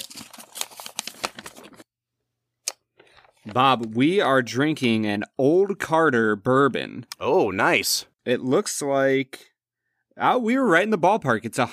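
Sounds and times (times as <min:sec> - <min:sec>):
paper envelope ripped open: 0:00.0 - 0:01.8
speech: 0:03.5 - 0:09.5, 0:10.2 - 0:11.7.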